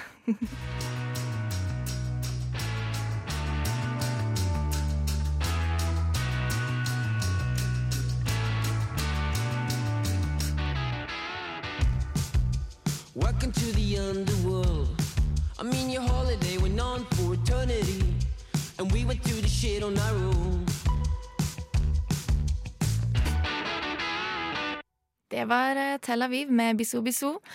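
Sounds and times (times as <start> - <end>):
speech: 0.2 - 0.8, 13.4 - 15.0, 15.6 - 20.9, 25.4 - 27.5
distorted guitar: 0.6 - 14.1, 18.9 - 24.8
loud pop-rock song with sung vocals: 13.0 - 21.5.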